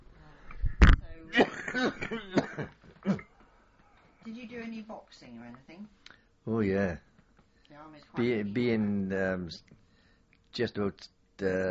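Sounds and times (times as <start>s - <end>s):
speech: 1.3s - 2.8s, 4.6s - 7.1s, 7.7s - 9.8s, 10.5s - 11.6s
person coughing: 1.3s - 3.4s
rough voiced throat clearing: 1.4s - 3.5s.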